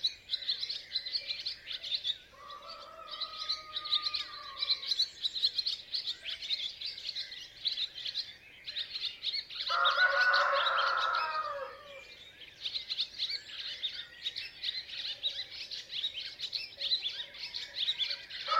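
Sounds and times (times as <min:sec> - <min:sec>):
small birds chirping: 0:00.0 - 0:18.5
rooster crowing: 0:02.4 - 0:04.9, 0:09.7 - 0:12.0.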